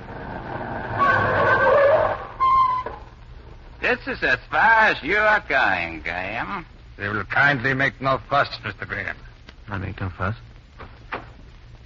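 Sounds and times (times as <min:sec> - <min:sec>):
car engine rumbling: 0:00.0 - 0:02.4
car tires squealing as the car skids and brakes: 0:00.0 - 0:03.0
speech: 0:03.9 - 0:10.5.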